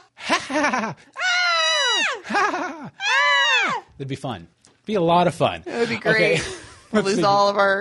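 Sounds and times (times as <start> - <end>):
speech: 0.3 - 1.2, 2.0 - 7.7
child screaming shrilly: 1.2 - 2.2, 3.0 - 3.9.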